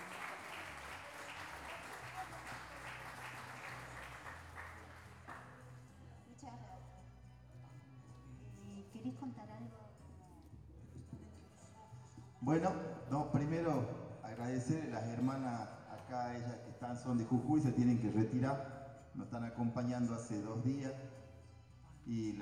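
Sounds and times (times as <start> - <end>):
crowd applauding at a pluricultural gathering in Salta: 0.0 - 5.7
speech: 12.4 - 21.2, 22.0 - 22.3.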